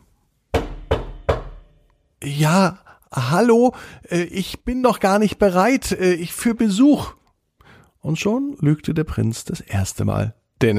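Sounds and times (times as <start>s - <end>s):
firm knocking on a wooden door: 0.5s - 1.7s
speech: 2.2s - 7.2s, 8.0s - 10.7s.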